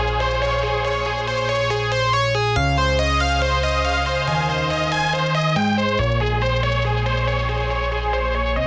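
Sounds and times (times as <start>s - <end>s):
highest synth lead: 0.1s - 8.5s.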